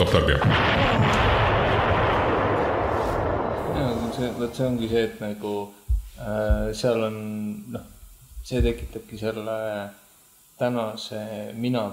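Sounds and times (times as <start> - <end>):
barrage of explosions: 0.0 - 5.2
speech: 0.1 - 1.2, 4.2 - 10.0, 10.6 - 11.9
heavy gunfire: 0.1 - 4.9.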